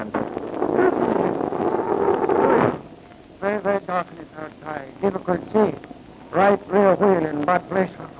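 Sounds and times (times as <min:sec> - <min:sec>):
wind blowing across a snowy valley: 0:00.2 - 0:04.0
speech: 0:04.0 - 0:05.9, 0:07.5 - 0:08.0.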